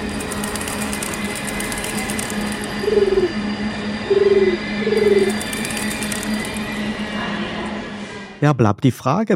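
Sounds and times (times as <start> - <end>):
constant mechanical hum: 0.0 - 8.5
pigeon cooing: 2.9 - 3.3, 4.1 - 5.4
speech: 8.4 - 9.3.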